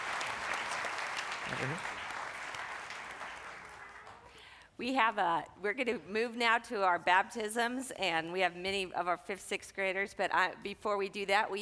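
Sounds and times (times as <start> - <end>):
church audience applause: 0.0 - 4.4
speech: 1.5 - 2.0, 4.8 - 11.5.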